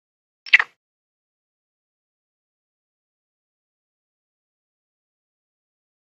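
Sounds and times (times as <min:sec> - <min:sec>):
ringtail monkey chirping: 0:00.5 - 0:00.7.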